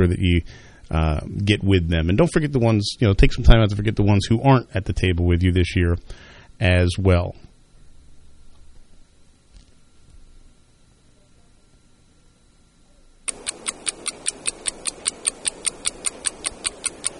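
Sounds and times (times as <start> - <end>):
speech: 0.0 - 7.4
faint low hum: 0.0 - 17.1
clock ticking: 13.3 - 17.1.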